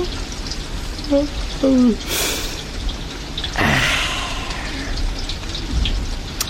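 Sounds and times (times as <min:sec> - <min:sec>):
steady rain falling: 0:00.0 - 0:06.4
brief vocal sound: 0:03.6 - 0:04.9.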